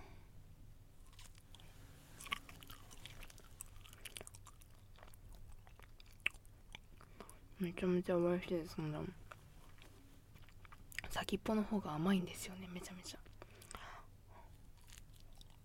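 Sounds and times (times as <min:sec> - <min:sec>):
chewing and biting a very firm banana: 0:01.0 - 0:07.5, 0:09.2 - 0:11.1, 0:14.4 - 0:15.6
speech: 0:07.6 - 0:09.2, 0:11.2 - 0:13.2.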